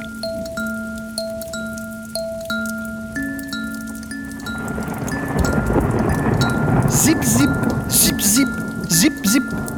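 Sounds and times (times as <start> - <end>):
gentle melody of sustained musical notes: 0.0 - 6.9
drips: 0.0 - 9.7
rain pattering on a roof: 0.0 - 9.7.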